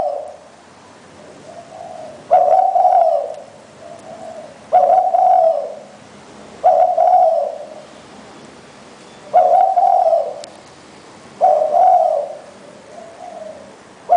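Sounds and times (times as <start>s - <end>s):
Spotted Dove cooing: 0.0s - 0.5s, 1.2s - 6.0s, 6.6s - 7.9s, 9.2s - 10.5s, 11.4s - 14.1s.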